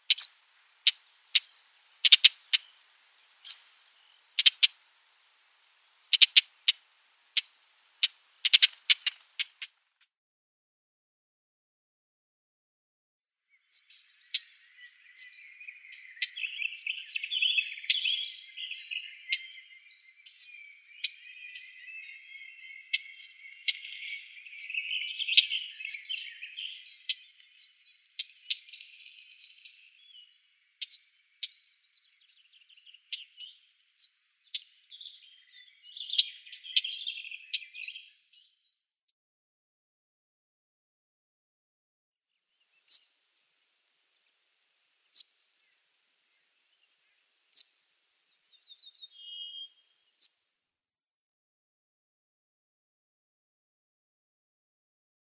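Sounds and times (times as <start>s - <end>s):
Northern Wheatear calls: 0.0s - 9.8s, 13.5s - 38.7s, 42.7s - 43.4s, 45.1s - 50.4s.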